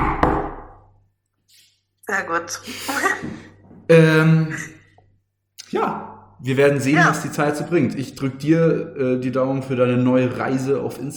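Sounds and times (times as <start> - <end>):
knock on wood: 0.0 - 0.7
speech: 2.1 - 4.8, 5.7 - 11.1.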